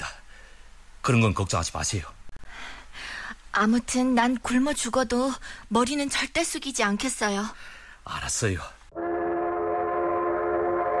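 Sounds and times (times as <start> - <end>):
speech: 1.0 - 2.2, 3.6 - 9.2
arriving train horn sounding a continuous chord: 8.9 - 10.9.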